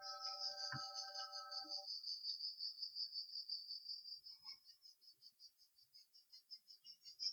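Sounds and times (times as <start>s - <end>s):
chorus of cicadas buzzing: 0.0s - 1.8s
low tonal sound: 0.0s - 1.8s.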